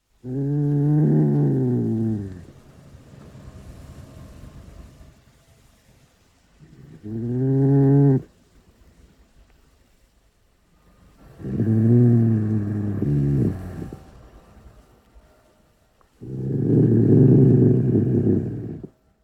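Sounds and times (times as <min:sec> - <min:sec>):
European badger Meles meles growling: 0:00.2 - 0:05.1, 0:06.6 - 0:08.3, 0:11.2 - 0:14.2, 0:16.2 - 0:19.0.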